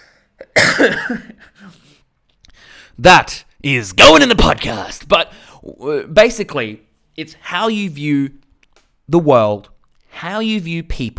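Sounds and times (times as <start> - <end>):
person sneezing and coughing: 0.4 - 2.1
speech: 0.8 - 1.8, 3.0 - 8.4, 9.1 - 11.1.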